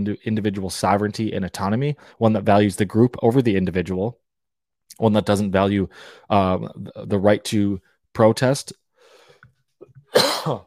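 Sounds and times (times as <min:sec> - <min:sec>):
speech: 0:00.0 - 0:04.2, 0:05.0 - 0:08.8, 0:10.1 - 0:10.6
breathing: 0:02.0 - 0:02.2, 0:05.9 - 0:06.3, 0:08.9 - 0:09.6
harsh raspy cough: 0:10.0 - 0:10.6.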